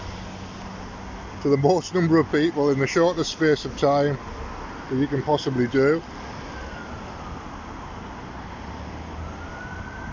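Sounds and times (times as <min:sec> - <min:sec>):
dense rush-hour traffic: 0:00.0 - 0:10.1
speech: 0:01.4 - 0:06.2
NHS Incident Response Unit ambulance siren wailing in rush-hour traffic: 0:05.0 - 0:10.1.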